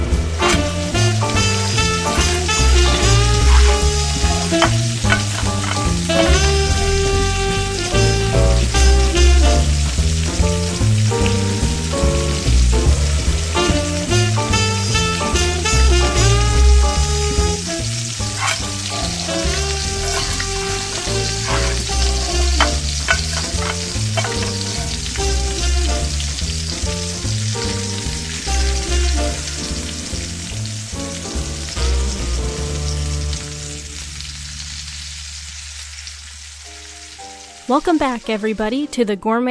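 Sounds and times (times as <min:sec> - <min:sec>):
upbeat royalty-free music with a regular beat: 0:00.0 - 0:30.4
dishes sizzling and crackling in a frying pan: 0:00.0 - 0:38.8
speech: 0:37.8 - 0:39.4.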